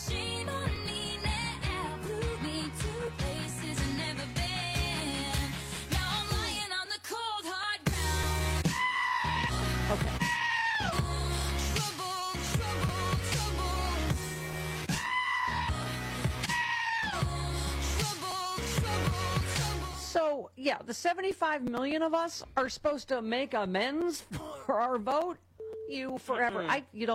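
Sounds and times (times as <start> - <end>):
pop song with heavy beat: 0.0 - 20.1
goats bleating and screaming: 10.2 - 10.9, 16.4 - 17.2
speech: 20.9 - 27.1.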